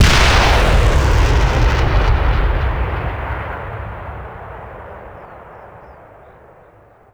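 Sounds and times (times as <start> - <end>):
axis soldier firing bazooka: 0.0 - 6.5.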